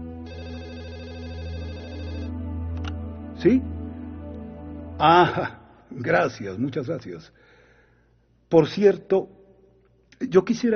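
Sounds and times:
telephone ringing: 0:00.2 - 0:02.3
speech: 0:03.4 - 0:03.8, 0:05.0 - 0:07.5, 0:08.5 - 0:09.4, 0:10.2 - 0:10.7.

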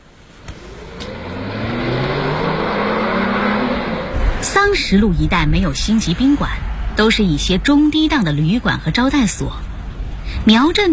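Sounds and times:
car engine accelerating while driving off: 0:00.3 - 0:07.0
speech: 0:04.6 - 0:09.7, 0:10.4 - 0:10.9.

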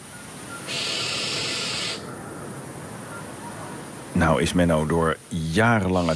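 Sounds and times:
constant background hiss: 0:00.0 - 0:06.1
barn owl screech by the high wall of a 12th-century château: 0:00.6 - 0:02.1, 0:06.0 - 0:06.1
speech: 0:04.2 - 0:06.1.

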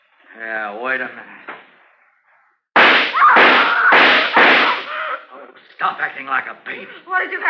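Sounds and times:
speech: 0:00.4 - 0:01.5, 0:05.8 - 0:07.4
gunshots fired into a wall: 0:02.8 - 0:04.9.

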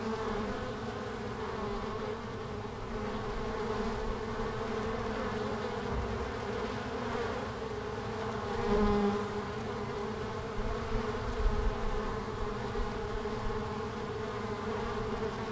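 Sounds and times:
single honey bees flying past: 0:00.0 - 0:15.5.

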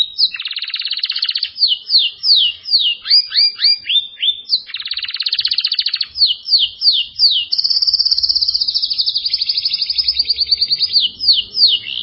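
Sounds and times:
Belgian canary singing buzzy rolled trills and downslurred whistles: 0:00.0 - 0:12.0.

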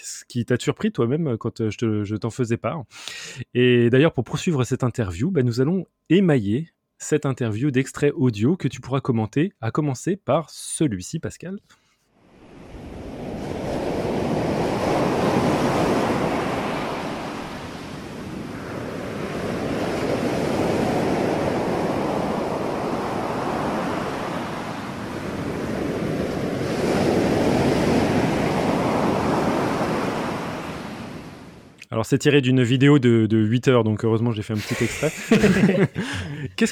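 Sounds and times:
speech: 0:00.2 - 0:11.8, 0:32.0 - 0:36.6
ocean waves breaking and washing in: 0:12.2 - 0:31.8
laughter: 0:34.6 - 0:36.6.

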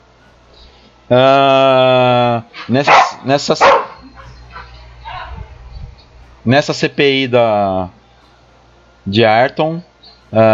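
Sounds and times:
speech: 0:01.1 - 0:03.8, 0:06.5 - 0:08.0, 0:09.0 - 0:10.5
dog whining with a long steady flat-pitched tone: 0:02.5 - 0:05.4
dog barking excitedly: 0:02.6 - 0:04.8.

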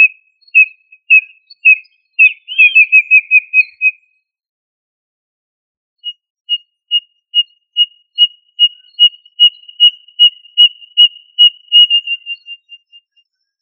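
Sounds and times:
quail of family Tinamidae whistling: 0:00.0 - 0:04.0, 0:06.0 - 0:13.2.

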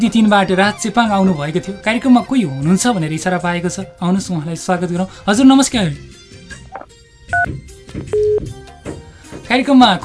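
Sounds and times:
speech: 0:00.0 - 0:06.2, 0:06.8 - 0:08.5, 0:09.5 - 0:10.0
electronic telephone tones as a call is cut off: 0:06.7 - 0:07.5, 0:08.1 - 0:08.4.

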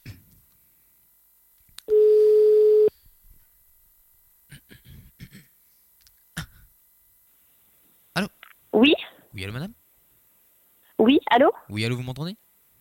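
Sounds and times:
telephone call tone while dialing a number: 0:01.9 - 0:02.9
speech: 0:11.4 - 0:12.4.

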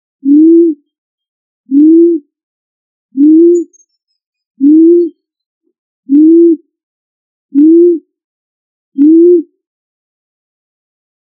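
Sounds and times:
pigeon cooing: 0:00.2 - 0:00.8, 0:01.7 - 0:02.3, 0:03.2 - 0:03.8, 0:04.6 - 0:05.2, 0:06.1 - 0:06.6, 0:07.6 - 0:08.1, 0:09.0 - 0:09.5.

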